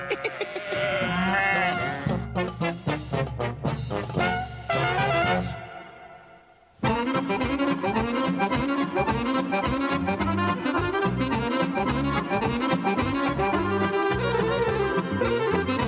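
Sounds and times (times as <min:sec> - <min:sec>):
sheep bleating: 0:00.0 - 0:02.2
busy rhythmic music track: 0:02.0 - 0:05.8, 0:06.8 - 0:15.8.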